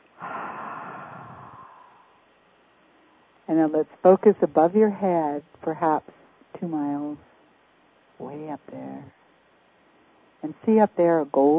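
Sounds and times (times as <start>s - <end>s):
deep breath during a guided relaxation exercise: 0.2s - 2.2s
speech: 3.5s - 7.3s, 8.2s - 9.2s, 10.4s - 11.5s.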